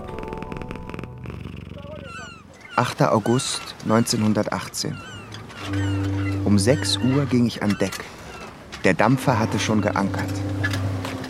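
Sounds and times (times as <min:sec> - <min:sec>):
black cat purring: 0:00.0 - 0:03.7
speech: 0:02.8 - 0:05.1, 0:05.7 - 0:08.2, 0:08.8 - 0:10.8.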